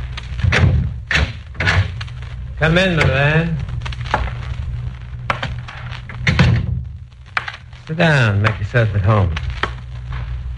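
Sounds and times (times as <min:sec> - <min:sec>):
low rumble: 0:00.0 - 0:10.5
hotel room door heavy wooden thuds and clunks: 0:00.4 - 0:02.0, 0:06.2 - 0:06.9
speech: 0:02.6 - 0:03.7, 0:07.9 - 0:09.5.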